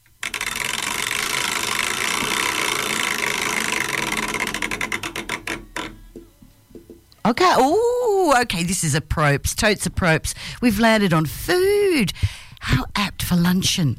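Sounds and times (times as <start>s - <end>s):
prize wheel being spun: 0.0s - 6.1s
speech: 7.3s - 13.9s.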